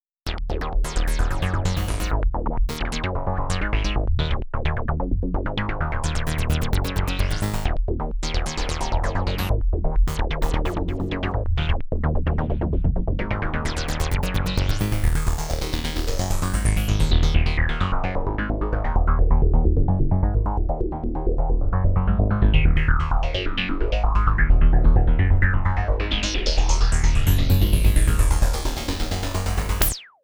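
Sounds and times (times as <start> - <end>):
new age synthesizer bass: 0.3 - 30.0.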